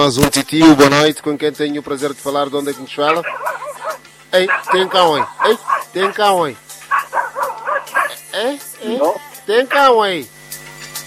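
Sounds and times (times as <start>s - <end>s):
speech: 0.0s - 3.6s, 4.3s - 6.6s, 8.4s - 10.4s
dog barking: 3.0s - 8.3s, 8.9s - 10.0s.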